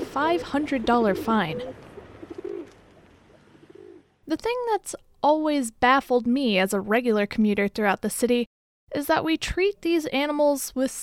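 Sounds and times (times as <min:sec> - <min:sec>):
pigeon cooing in a city: 0:00.0 - 0:04.1
speech: 0:00.2 - 0:01.9, 0:04.3 - 0:11.0.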